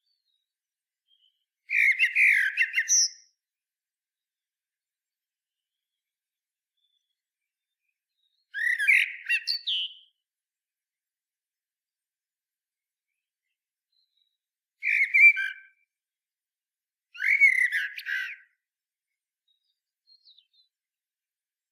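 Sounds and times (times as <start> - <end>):
common blackbird Turdus merula singing: 1.1 - 3.3, 8.2 - 10.1, 14.8 - 15.7, 17.2 - 18.5.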